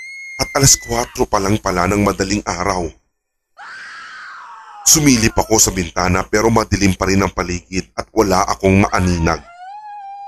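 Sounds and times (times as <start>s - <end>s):
speech: 0.6s - 3.0s, 4.8s - 9.5s
woman screaming loudly outside before dawn: 3.6s - 5.5s.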